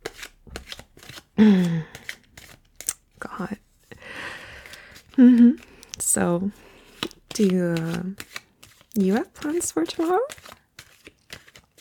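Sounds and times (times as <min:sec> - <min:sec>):
deck of playing cards being shuffled: 0:00.0 - 0:03.1, 0:04.6 - 0:11.7
speech: 0:01.4 - 0:01.9, 0:05.2 - 0:05.6, 0:06.2 - 0:06.7, 0:07.4 - 0:08.4, 0:09.0 - 0:10.4
person humming: 0:01.4 - 0:02.0, 0:05.1 - 0:05.6.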